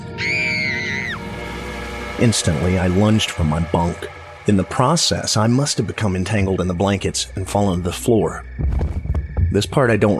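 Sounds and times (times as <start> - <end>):
person screaming at a camp at night: 0.0 - 1.2
speech: 2.2 - 10.1.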